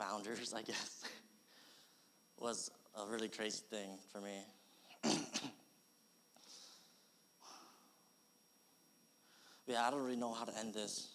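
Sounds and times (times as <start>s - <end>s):
speech: 0.0s - 1.2s, 2.4s - 5.4s, 9.7s - 11.1s
person sneezing: 5.0s - 5.6s.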